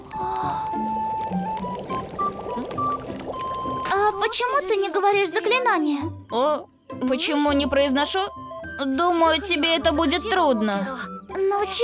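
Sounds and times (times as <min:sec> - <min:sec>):
water pouring in a splashing stream: 0:00.0 - 0:05.3
speech: 0:04.2 - 0:11.8.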